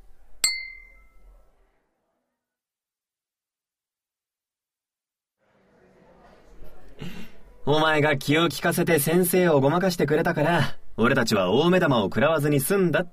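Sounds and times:
glasses clinking in a toast: 0.4 - 1.2
murmur: 5.4 - 7.8
soft voices: 5.8 - 7.7
speech: 7.7 - 13.1.

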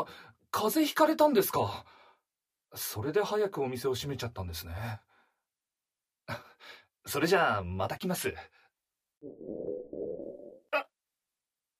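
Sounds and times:
speech: 0.0 - 2.0, 2.7 - 5.1, 6.3 - 8.6
stomach growling: 9.2 - 10.9.

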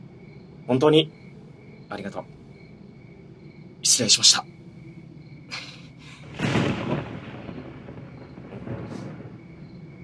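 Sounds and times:
speech: 0.7 - 1.2, 1.9 - 2.4, 3.9 - 4.6
low rolling thunder rumbling: 5.5 - 10.0.

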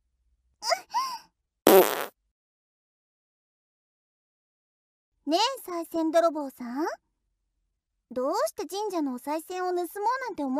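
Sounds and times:
raspy sputtering fart: 1.7 - 2.2
speech: 5.3 - 7.0, 8.1 - 10.5.

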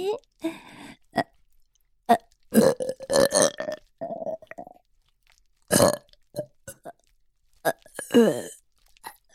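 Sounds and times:
gulping and hiccup-like bursts: 1.1 - 1.4, 2.1 - 4.8, 5.6 - 9.2
long wobbling burp after drinking milk: 2.1 - 4.8, 5.7 - 6.9.

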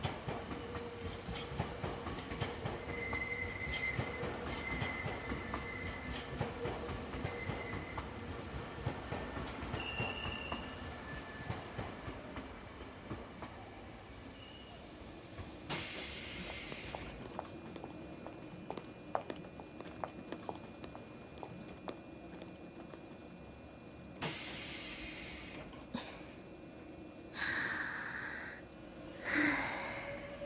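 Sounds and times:
train rolling into a station: 0.0 - 30.4
train air brakes hissing: 14.2 - 17.2, 24.2 - 26.2, 29.2 - 30.4.

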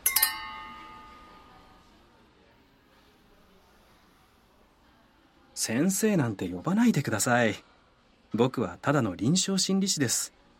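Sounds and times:
glasses clinking together in a toast: 0.0 - 1.6
speech: 5.6 - 7.7, 8.3 - 10.4.

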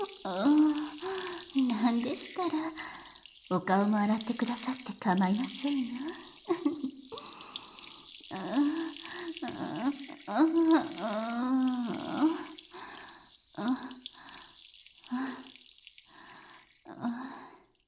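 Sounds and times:
vocal sounds: 0.0 - 14.1
urine stream splashing during a bath: 0.0 - 16.5
speech: 1.9 - 6.2, 10.3 - 12.4.

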